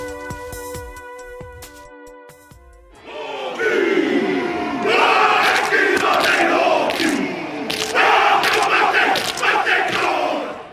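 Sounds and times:
rugby team chanting and shouting a Maori haka war dance: 2.9s - 10.7s.

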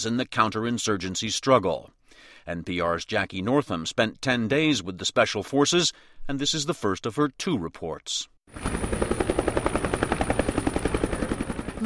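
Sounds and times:
speech: 0.0s - 9.1s
helicopter rotor blades thumping: 8.5s - 11.8s.

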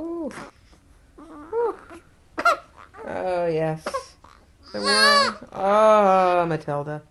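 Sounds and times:
speech: 0.0s - 0.6s, 3.6s - 4.0s, 4.7s - 7.1s
two-week-old baby girl waking and fussing: 0.0s - 6.4s
two-week-old baby girl crying: 1.2s - 3.3s, 3.9s - 5.6s.

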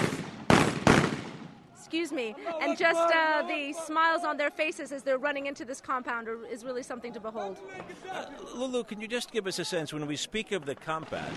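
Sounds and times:
celebratory gunfire: 0.0s - 1.6s, 10.6s - 11.3s
speech: 1.9s - 11.3s.

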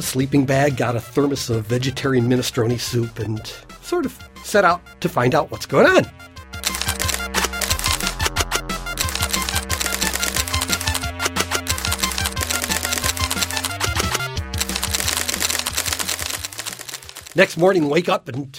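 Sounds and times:
speech: 0.0s - 6.3s, 17.4s - 18.5s
teletype printer printing out paper: 6.6s - 8.2s, 9.0s - 17.5s.

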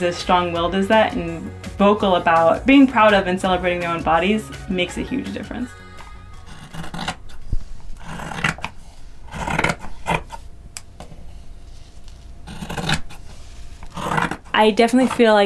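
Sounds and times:
speech: 0.0s - 5.8s, 14.6s - 15.4s
scissors slicing through fabric: 6.4s - 7.4s, 8.0s - 10.4s, 12.4s - 13.2s, 13.8s - 15.4s.

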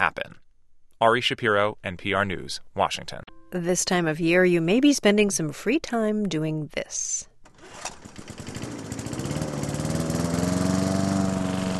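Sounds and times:
speech: 0.0s - 0.4s, 1.0s - 8.4s
lawn mower engine running while mowing grass: 7.4s - 11.7s.

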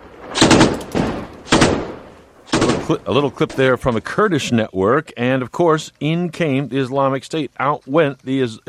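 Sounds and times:
rolling echo of gunfire: 0.0s - 3.1s
gunfire bursts in a battle: 0.2s - 3.5s
speech: 2.9s - 8.6s.

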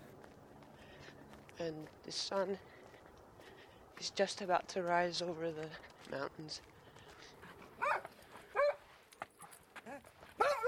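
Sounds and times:
quiet outdoor noise: 0.0s - 10.6s
speech: 1.6s - 2.8s, 4.0s - 6.7s
dog barking excitedly: 7.8s - 8.8s, 10.4s - 10.6s.

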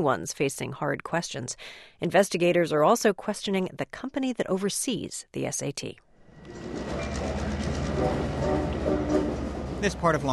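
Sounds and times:
speech: 0.0s - 6.7s, 8.0s - 8.8s, 9.8s - 10.3s
commuter train rolling along the rails: 6.2s - 10.3s.

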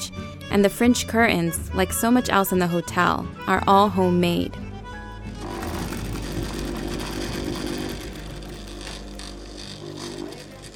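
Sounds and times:
speech: 0.5s - 4.6s
sewing machine running in a sewing shop: 5.4s - 10.7s.

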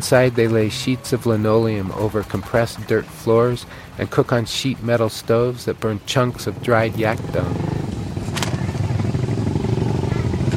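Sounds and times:
speech: 0.0s - 7.8s
voices: 0.0s - 7.9s
Chinese four-stroke motorcycle engine rumbling: 0.0s - 10.5s.

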